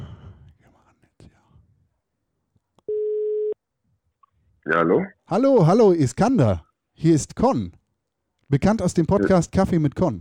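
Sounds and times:
ringback tones of an outgoing phone call: 2.9s - 3.5s
speech: 4.7s - 7.8s, 8.5s - 10.1s.

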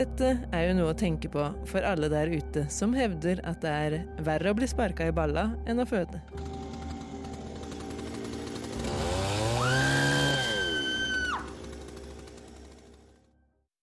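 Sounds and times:
speech: 0.0s - 6.5s
chainsaw idling and revving: 6.2s - 13.3s.

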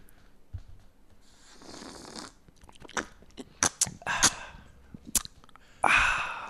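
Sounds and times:
sipping from a drink for an ASMR recording: 1.5s - 5.3s
wet mouth clicks: 1.6s - 5.6s
gulping and breathy swallowing: 2.6s - 5.6s.

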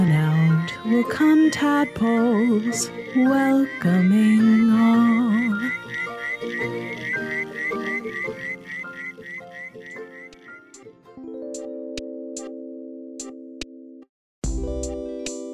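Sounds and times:
frog whistling call: 0.0s - 10.8s
speech: 0.8s - 5.2s.

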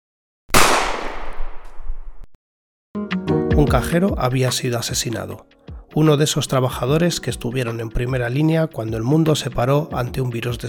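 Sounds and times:
gunshot at point-blank range: 0.5s - 2.2s
tonal music: 3.0s - 4.5s
speech: 3.6s - 10.6s.

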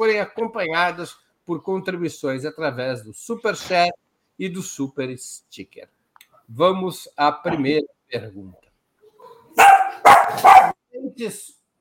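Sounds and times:
speech: 0.0s - 8.6s, 10.0s - 11.6s
dog barking: 9.6s - 10.8s.

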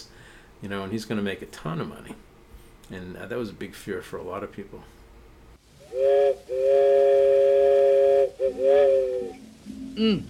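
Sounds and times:
speech: 0.6s - 2.3s, 2.9s - 5.0s, 5.9s - 9.4s, 10.0s - 10.2s
loud piercing whistle blasts: 5.8s - 9.4s.

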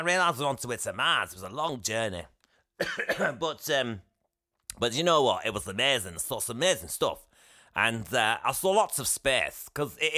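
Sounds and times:
speech: 0.0s - 4.1s, 4.8s - 10.1s
throaty voiced coughs: 2.8s - 3.5s.

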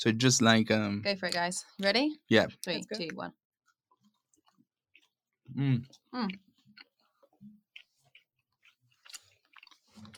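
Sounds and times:
speech: 0.0s - 3.4s, 5.5s - 6.5s
crunchy chewing of chocolate-covered worms: 3.6s - 10.1s.

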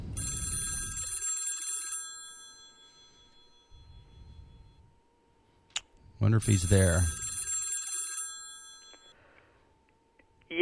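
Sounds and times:
telephone ringing after a call is dialed: 0.1s - 4.9s, 6.4s - 9.2s
faint steady tone: 2.2s - 7.2s, 8.6s - 10.5s
speech: 6.2s - 7.2s.

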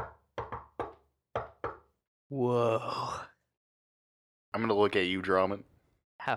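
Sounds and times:
sharp rhythmic knocking on a door: 0.0s - 1.9s
speech: 2.3s - 3.3s, 4.6s - 6.3s.

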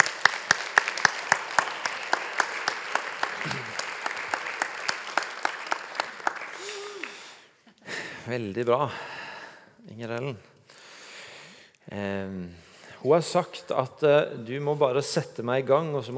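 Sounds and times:
crowd applauding: 0.0s - 7.4s
speech: 8.3s - 9.1s, 9.9s - 10.5s, 11.9s - 16.1s.

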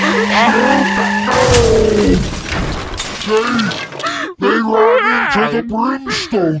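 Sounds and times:
loud high-pitched car tire squeals: 0.0s - 4.2s
speech: 0.3s - 1.0s, 3.3s - 3.8s, 4.6s - 6.5s
harsh noisy impact-like burst at the end of a car skid: 1.3s - 3.7s.

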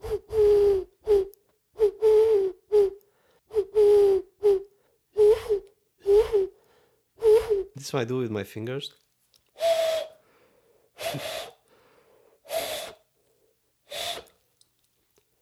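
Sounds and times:
person whistling an imitation of an owl hoot: 0.0s - 6.6s, 7.2s - 7.7s, 9.6s - 10.2s, 11.0s - 11.6s, 12.5s - 13.0s, 13.9s - 14.3s
speech: 7.8s - 9.0s, 11.2s - 11.4s.

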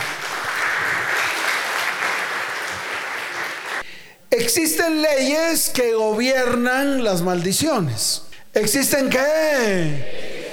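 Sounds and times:
audience applauding: 0.0s - 3.9s
speech: 4.3s - 10.2s.

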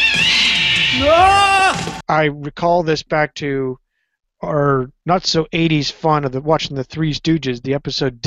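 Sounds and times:
cat screaming: 0.0s - 2.0s
speech: 1.0s - 1.5s, 2.1s - 3.8s, 4.4s - 8.2s.

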